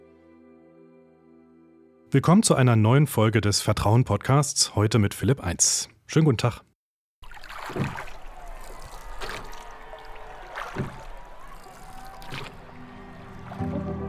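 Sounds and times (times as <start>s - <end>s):
speech: 2.1s - 6.7s
rowing boat oar strokes splashing: 7.2s - 13.8s
water rushing under a gliding rowing boat: 7.2s - 14.0s.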